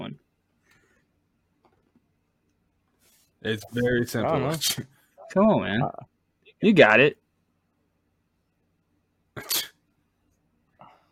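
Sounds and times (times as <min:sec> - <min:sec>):
speech: 0:03.4 - 0:07.2
person sneezing: 0:09.4 - 0:09.8.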